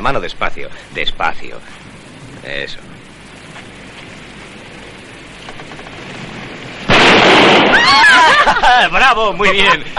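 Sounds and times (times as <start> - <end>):
speech: 0.0 - 2.9, 7.9 - 9.9
noisy rush after a gunshot at a tyre: 0.0 - 9.9
gunshot fired at a tyre: 6.9 - 8.0
laughter: 7.8 - 9.9.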